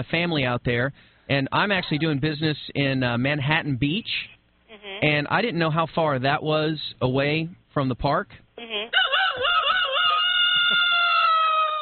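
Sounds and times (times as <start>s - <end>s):
speech: 0.0s - 8.7s
rooster crowing: 8.9s - 11.8s.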